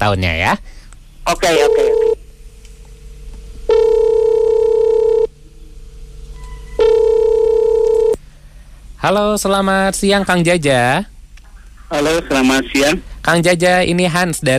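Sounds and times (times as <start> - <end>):
speech: 0.0 - 2.2, 9.0 - 11.1, 11.9 - 14.5
ringback tone of an outgoing phone call: 1.6 - 2.2, 3.7 - 5.3, 6.4 - 8.2.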